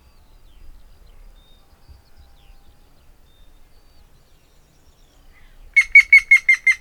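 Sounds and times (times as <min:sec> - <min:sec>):
grey-headed woodpecker Picus canus call: 0:05.4 - 0:06.7.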